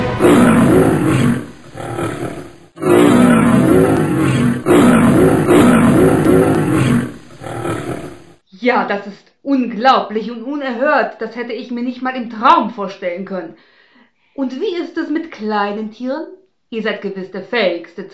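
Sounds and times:
lion roaring: 0.2s - 8.4s
speech: 8.8s - 13.8s, 14.4s - 18.1s.

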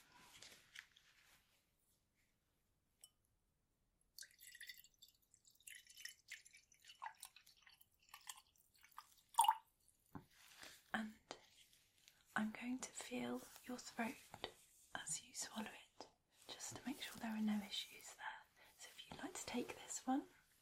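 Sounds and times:
quiet rustle: 0.0s - 2.3s, 10.3s - 20.6s
water pouring into a cup: 4.2s - 9.7s
speech: 12.6s - 15.8s, 17.2s - 18.2s, 19.5s - 20.3s.

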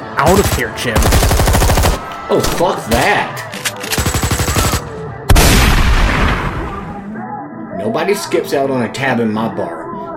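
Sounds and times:
speech: 0.2s - 1.6s, 2.3s - 3.5s, 7.8s - 9.8s
rapid burst of gunshots: 0.2s - 3.2s, 3.8s - 6.8s.

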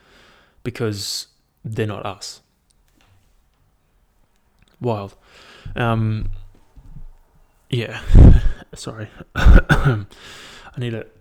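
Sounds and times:
speech: 0.7s - 2.4s, 4.8s - 6.4s, 7.7s - 11.1s
person coughing: 8.0s - 8.6s, 9.2s - 10.1s.

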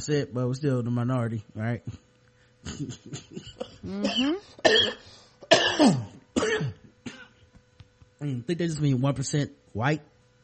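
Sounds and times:
speech: 0.0s - 2.0s, 2.6s - 6.8s, 8.2s - 10.1s
harsh forceful coughs: 2.6s - 7.4s
throat clearing: 2.6s - 7.4s.

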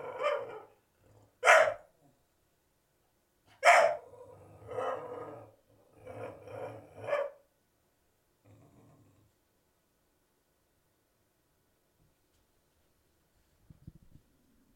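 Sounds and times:
dog barking: 0.0s - 0.7s, 1.4s - 1.9s, 3.5s - 4.1s, 7.0s - 7.4s.

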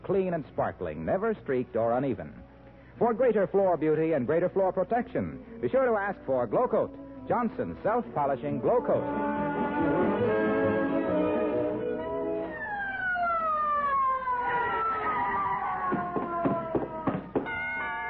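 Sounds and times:
speech: 0.1s - 10.4s
ambulance siren wailing: 8.6s - 17.9s
sharp clattering knocks: 15.8s - 17.8s.

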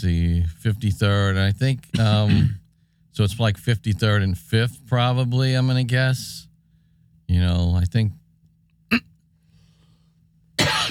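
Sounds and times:
speech: 0.0s - 2.6s, 3.2s - 6.5s, 7.3s - 8.2s
person coughing from a tickle in the throat: 1.9s - 2.6s, 10.6s - 10.9s.

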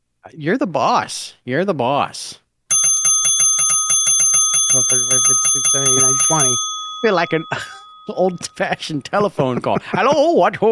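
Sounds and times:
speech: 0.2s - 2.4s, 4.8s - 10.7s
bicycle bell ringing with a bright metallic trill: 2.7s - 9.3s
laughter: 7.5s - 7.9s, 8.7s - 10.4s.

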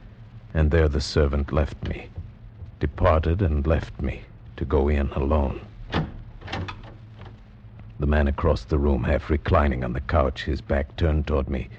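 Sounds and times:
low steady hum: 0.0s - 11.7s
speech: 0.6s - 2.2s, 2.8s - 6.0s, 8.0s - 11.7s
studio door opening with a soft scrape and creaks: 5.8s - 7.5s.

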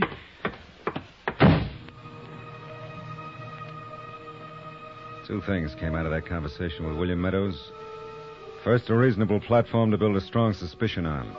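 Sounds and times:
door slamming shut: 1.3s - 1.9s
speech: 5.3s - 7.9s, 8.6s - 11.3s.

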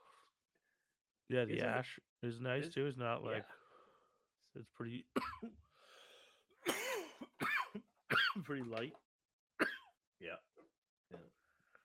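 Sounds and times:
speech: 1.3s - 3.6s, 4.5s - 5.6s, 8.1s - 9.0s, 9.6s - 10.5s, 11.1s - 11.4s
person coughing after smoking: 6.6s - 8.4s.

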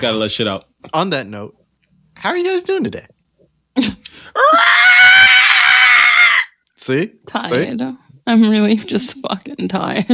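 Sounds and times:
speech: 0.0s - 1.6s, 2.2s - 3.1s, 3.8s - 4.6s, 6.9s - 10.1s
person screaming loudly: 4.4s - 6.6s.

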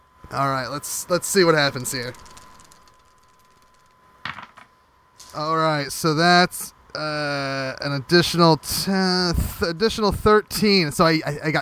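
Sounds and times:
speech: 0.3s - 2.4s, 5.3s - 11.5s
three dice rolled in a tabletop game: 1.8s - 5.4s.

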